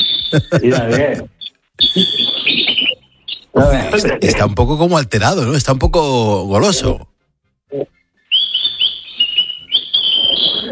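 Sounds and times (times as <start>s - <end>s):
bird whistling and chirping: 0.0s - 0.6s, 1.4s - 3.6s, 7.9s - 10.6s
laughter: 0.3s - 2.3s, 10.3s - 10.6s
speech: 0.3s - 2.4s, 3.6s - 7.1s, 7.7s - 7.9s.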